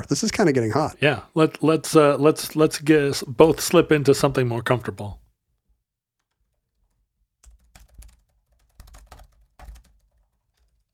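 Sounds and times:
speech: 0.0 - 5.2
forceful typing on a laptop keyboard: 6.2 - 10.9.

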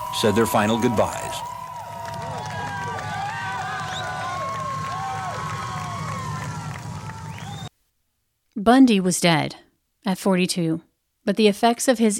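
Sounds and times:
crowd whistles: 0.0 - 7.7
large outdoor crowd roaring and cheering: 0.0 - 7.7
overlapping shouts from crowd: 0.0 - 7.7
speech: 0.2 - 1.3, 8.7 - 12.1.

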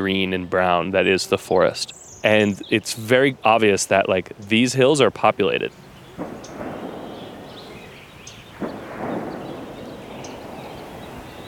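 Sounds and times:
faint bird chirps: 0.0 - 5.0, 5.6 - 11.4
speech: 0.0 - 6.3
distant gunshots echoing in the mountains: 6.0 - 11.4.

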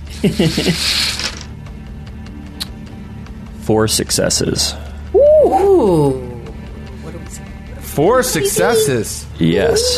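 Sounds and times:
speech: 0.2 - 1.2, 3.7 - 6.2, 8.0 - 9.9
dice rattling and clattering: 0.9 - 1.5
voice murmuring: 8.3 - 9.9.

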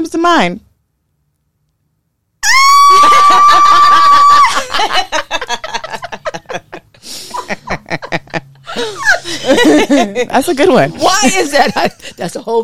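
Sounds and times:
speech: 0.1 - 0.7, 9.2 - 12.6
loud sustained high-pitched scream: 2.4 - 4.6
laughter: 2.9 - 10.3.

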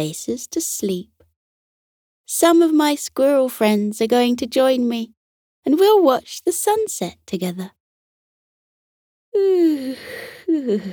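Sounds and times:
speech: 0.0 - 1.1, 2.3 - 7.8, 9.4 - 10.9
person acting out a big yawn: 9.4 - 10.9.

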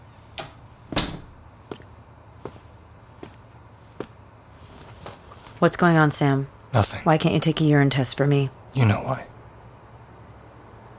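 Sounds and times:
quiet hum: 0.0 - 10.9
door shutting with a solid thud: 0.4 - 1.4
speech: 5.6 - 9.3.

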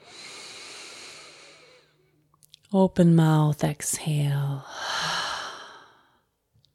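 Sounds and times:
deep slow inhale during a guided breathing exercise: 0.0 - 2.0, 4.6 - 6.3
speech: 2.7 - 4.9.

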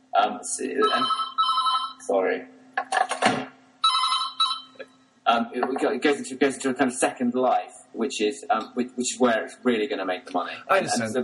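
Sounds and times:
speech: 0.2 - 1.4, 2.1 - 2.6, 5.3 - 11.2
telephone ringing with warbling electronic tone: 0.8 - 2.0, 3.8 - 4.9.

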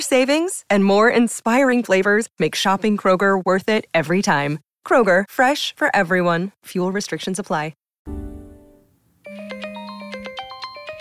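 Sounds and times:
speech: 0.0 - 8.2
phone ringtone: 9.3 - 10.9.

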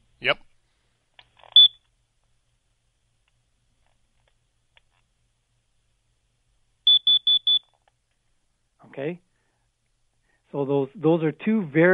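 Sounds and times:
carbon monoxide alarm beeping: 1.5 - 1.8, 6.9 - 7.7
speech: 9.0 - 9.3, 10.5 - 11.9.

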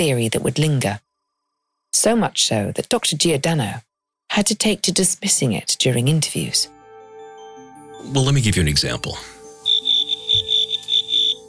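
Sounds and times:
speech: 0.0 - 1.0, 2.0 - 6.8, 8.0 - 9.4
cricket-like chirping from a played recording: 0.0 - 3.4, 9.5 - 11.4.

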